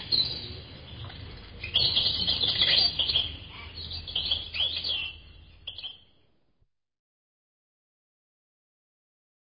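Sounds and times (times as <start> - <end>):
bird chirping and chattering: 0.0 - 6.1.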